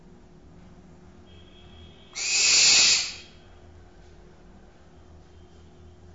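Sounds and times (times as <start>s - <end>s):
barn owl screech: 2.2s - 3.4s.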